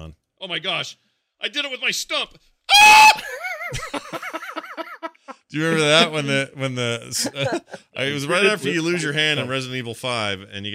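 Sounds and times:
speech: 0:00.4 - 0:04.5, 0:05.5 - 0:10.7
person screaming loudly: 0:02.7 - 0:03.4
person wailing and yelping: 0:02.7 - 0:06.2, 0:07.2 - 0:07.8
laughter: 0:03.2 - 0:06.5, 0:07.1 - 0:09.6.

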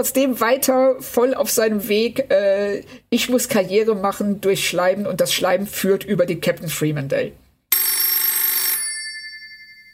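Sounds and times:
speech: 0:00.0 - 0:07.4
telephone bell ringing with a bright metallic trill: 0:07.7 - 0:09.9.

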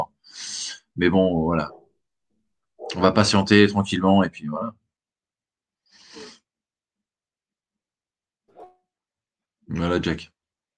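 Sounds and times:
speech: 0:01.0 - 0:01.8, 0:02.9 - 0:04.8, 0:09.7 - 0:10.4
dog barking: 0:01.6 - 0:01.9, 0:02.8 - 0:03.4.

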